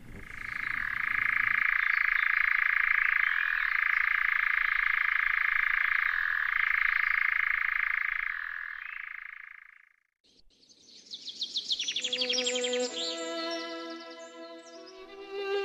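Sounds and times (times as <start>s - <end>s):
European nightjar churring: 0.2s - 9.9s
brief musical passage: 12.0s - 15.6s.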